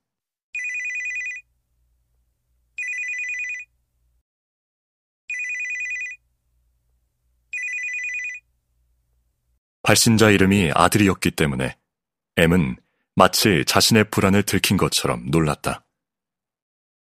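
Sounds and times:
mobile phone ringing in bright buzzy bursts: 0:00.6 - 0:01.5, 0:02.8 - 0:03.7, 0:05.3 - 0:06.2, 0:07.5 - 0:08.5
speech: 0:09.9 - 0:11.8, 0:12.4 - 0:15.8.

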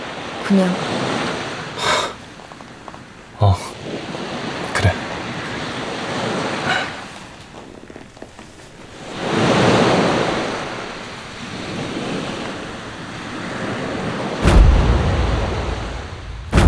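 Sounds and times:
ocean waves breaking on shore: 0:00.0 - 0:16.6
speech: 0:00.5 - 0:01.0.

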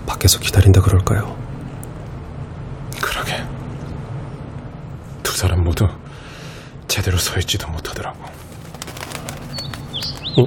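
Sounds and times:
speech: 0:00.2 - 0:01.4, 0:05.3 - 0:06.3, 0:06.9 - 0:08.5
small young bird's wings flapping inside a crematorium: 0:08.3 - 0:10.4
small young bird's high chirps: 0:09.0 - 0:10.4.

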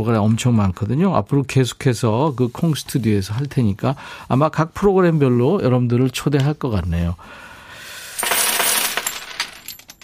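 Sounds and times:
speech: 0:00.0 - 0:07.5
coins spilling out in a jingling heap: 0:08.1 - 0:10.0.

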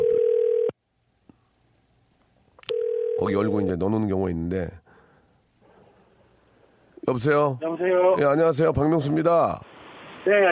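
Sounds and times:
ringback tone of an outgoing telephone call: 0:00.0 - 0:00.7, 0:02.7 - 0:03.5
speech: 0:03.2 - 0:04.8, 0:07.1 - 0:10.5.

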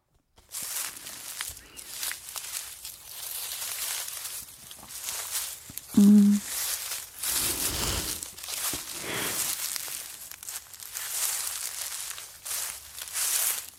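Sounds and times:
footsteps crunching through dry fallen leaves: 0:00.4 - 0:05.9, 0:06.5 - 0:13.7
person humming: 0:06.0 - 0:06.4
speech: 0:06.0 - 0:06.5.

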